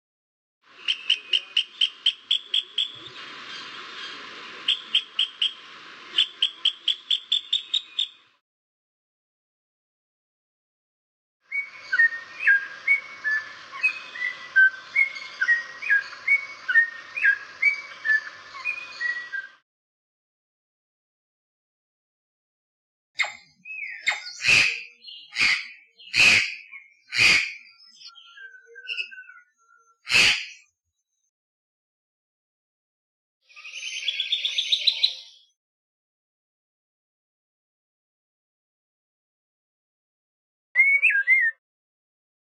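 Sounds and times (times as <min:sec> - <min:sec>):
birds in Costa Rica: 0:00.7 - 0:08.4, 0:11.5 - 0:19.6, 0:23.2 - 0:31.3, 0:33.5 - 0:35.6.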